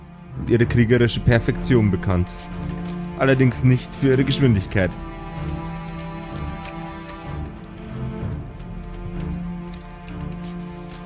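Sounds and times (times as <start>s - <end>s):
speech: 0.5s - 5.7s
thundering footsteps of a marching army of dwarven ground troops: 1.1s - 11.0s.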